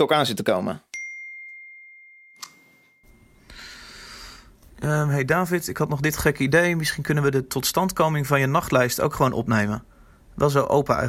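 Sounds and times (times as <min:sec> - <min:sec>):
speech: 0:00.0 - 0:00.9, 0:04.8 - 0:11.0
bright text-message notification ding: 0:01.0 - 0:03.5.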